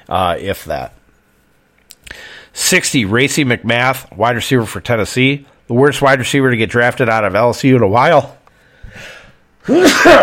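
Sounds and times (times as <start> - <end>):
speech: 0.1 - 1.0, 2.6 - 10.2
person sneezing: 9.0 - 10.2.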